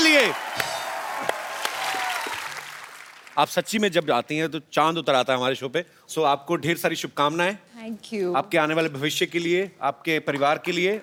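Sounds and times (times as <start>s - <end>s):
studio audience applauding on a comedy talk show: 0.0s - 4.0s
speech: 0.2s - 0.6s, 3.4s - 11.0s.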